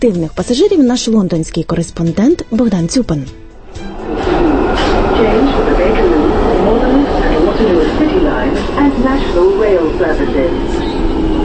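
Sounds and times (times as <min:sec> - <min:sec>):
speech: 0:00.0 - 0:04.0, 0:06.9 - 0:10.9
London Underground subway train rumbling: 0:03.6 - 0:11.4
subway train wheels squealing: 0:03.8 - 0:11.4.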